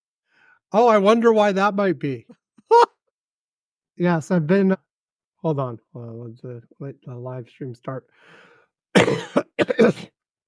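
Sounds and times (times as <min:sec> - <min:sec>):
speech: 0:00.7 - 0:02.9, 0:04.0 - 0:10.2
loud cough or throat-clearing: 0:09.0 - 0:10.2.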